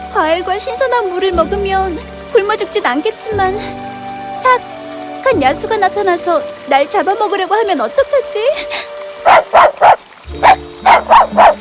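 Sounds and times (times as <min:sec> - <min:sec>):
speech: 0:00.2 - 0:04.7, 0:05.3 - 0:09.4
puppy barking: 0:09.2 - 0:11.6.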